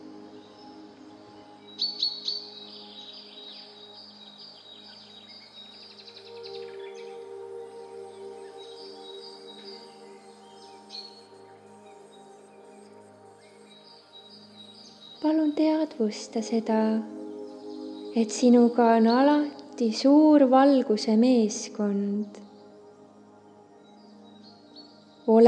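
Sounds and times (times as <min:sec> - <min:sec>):
birds chirping and singing: 0:00.0 - 0:25.4
speech: 0:15.2 - 0:17.2, 0:18.2 - 0:22.4.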